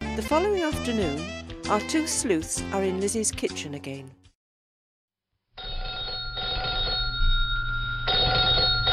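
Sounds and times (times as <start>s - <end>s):
speech: 0.2s - 4.2s
old-fashioned telephone bell ringing: 5.6s - 8.9s.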